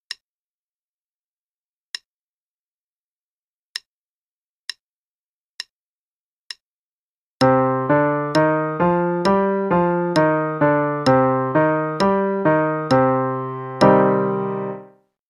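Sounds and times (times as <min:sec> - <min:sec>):
C minor musical pattern: 0:07.4 - 0:14.9.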